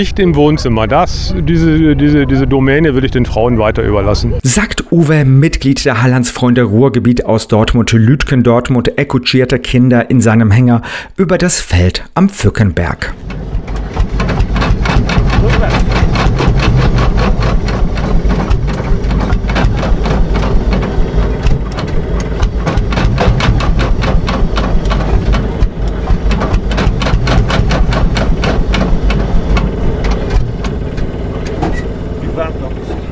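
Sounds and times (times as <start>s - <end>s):
Lanz Bulldog single-cylinder tractor engine running: 0.0s - 4.4s, 12.4s - 33.1s
speech: 0.0s - 14.1s.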